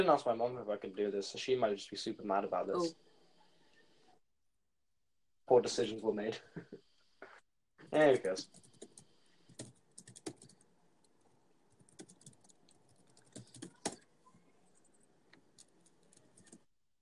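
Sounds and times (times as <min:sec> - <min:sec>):
speech: 0:00.0 - 0:03.0, 0:05.5 - 0:06.9, 0:07.8 - 0:08.7
computer keyboard typing clicks: 0:08.5 - 0:10.6, 0:11.8 - 0:14.0.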